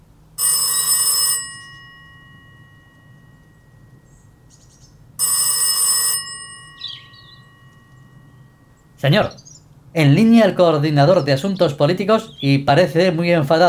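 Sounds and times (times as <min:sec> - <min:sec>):
telephone bell ringing with a bright metallic trill: 0:00.3 - 0:10.6
faint chirps: 0:02.6 - 0:05.2, 0:06.6 - 0:13.4
speech: 0:09.0 - 0:09.4, 0:10.0 - 0:13.6.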